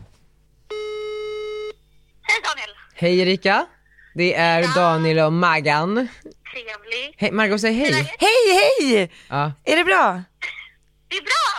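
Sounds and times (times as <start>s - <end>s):
telephone ringback tone while placing a call to an office contact: 0.7s - 1.8s
speech: 3.0s - 11.5s.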